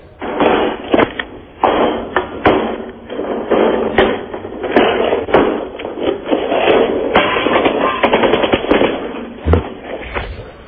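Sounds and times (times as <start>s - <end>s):
gunfire sound effect played from a CD: 0.2s - 10.0s.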